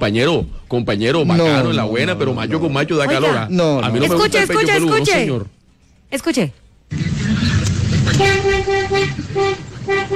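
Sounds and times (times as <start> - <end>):
speech: 0.0 - 7.1, 8.2 - 10.1
deep truck-like vehicle horn honking: 8.1 - 10.1.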